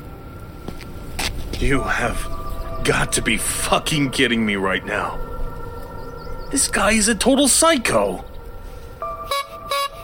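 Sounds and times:
speech: 0:01.6 - 0:05.3, 0:06.5 - 0:08.3
clown horn honking: 0:09.2 - 0:10.0.

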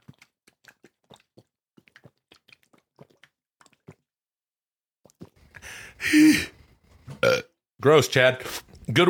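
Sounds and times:
speech: 0:05.7 - 0:06.5, 0:07.8 - 0:09.0
person hiccuping: 0:07.2 - 0:07.5.

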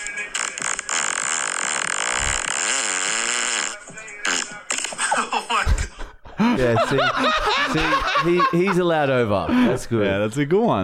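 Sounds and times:
long loud recorded fart: 0:00.3 - 0:05.0
laughter: 0:04.7 - 0:10.0
speech: 0:06.4 - 0:10.8.

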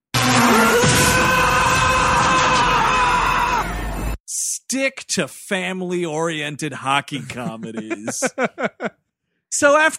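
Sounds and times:
man in an action movie screaming: 0:00.2 - 0:03.8
speech: 0:04.7 - 0:09.9
laughter: 0:07.1 - 0:09.0.

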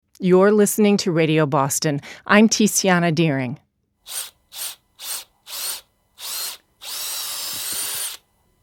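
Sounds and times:
speech: 0:00.2 - 0:04.8
drill whirring into a maple tree to set a spile for syrup: 0:04.0 - 0:08.3.

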